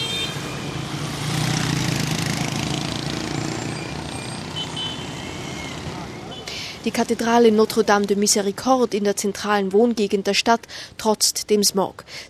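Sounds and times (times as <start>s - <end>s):
faint high beeps or horns: 0.0s - 0.8s, 3.6s - 6.5s
swarm of mopeds buzzing past in heavy street traffic: 0.2s - 6.4s
speech: 6.8s - 12.2s.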